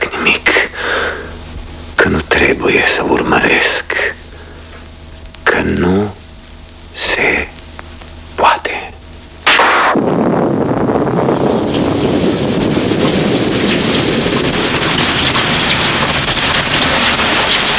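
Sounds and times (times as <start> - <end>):
heavy rain: 0.0 - 17.7
speech: 2.1 - 4.2, 5.6 - 6.2, 7.2 - 7.5
gusty wind: 9.0 - 17.7.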